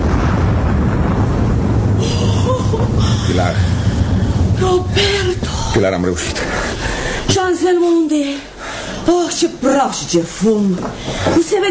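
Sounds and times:
explosion blowing up a bridge: 0:00.0 - 0:07.4
speech: 0:03.3 - 0:03.9, 0:05.8 - 0:11.7.

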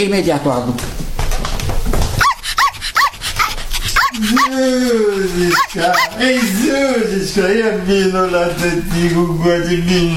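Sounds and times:
speech: 0:00.0 - 0:01.0, 0:04.2 - 0:10.1
small female dog yipping and barking: 0:02.2 - 0:04.6, 0:05.5 - 0:06.2
small female dog whimpering whine: 0:02.2 - 0:06.5.

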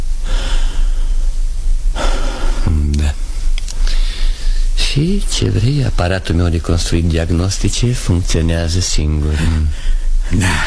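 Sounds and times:
low steady hum: 0:00.0 - 0:10.6
long deep inhalation: 0:00.2 - 0:04.8, 0:09.4 - 0:10.6
speech: 0:05.0 - 0:10.6.

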